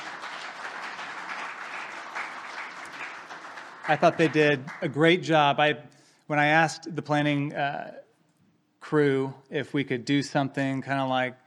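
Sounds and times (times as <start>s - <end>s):
room full of people applauding: 0.0s - 5.4s
speech: 3.9s - 8.0s, 8.9s - 11.4s.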